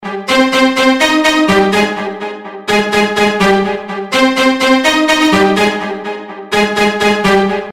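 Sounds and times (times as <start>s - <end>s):
deluxe strings: 0.0s - 7.7s.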